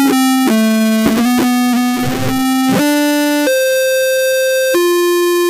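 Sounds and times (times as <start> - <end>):
8 bit game victory sound: 0.1 - 5.4.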